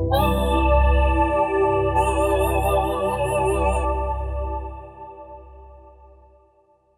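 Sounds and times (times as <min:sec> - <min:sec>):
Digitvox digital voice: 0:00.1 - 0:01.1, 0:01.8 - 0:04.7.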